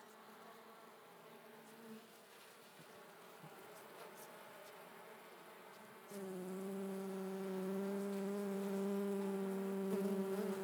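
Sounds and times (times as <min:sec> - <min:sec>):
honey bee buzzing: 0:06.2 - 0:10.6.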